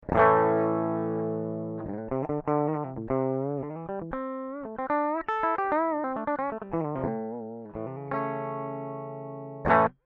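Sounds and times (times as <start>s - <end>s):
direct-input guitar: 0.0s - 10.0s.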